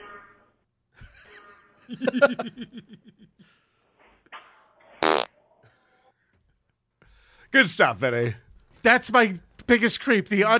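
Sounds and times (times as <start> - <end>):
laughter: 1.0 - 3.6
speech: 1.9 - 3.7, 7.5 - 10.5
loud sputtering fart: 4.9 - 5.4.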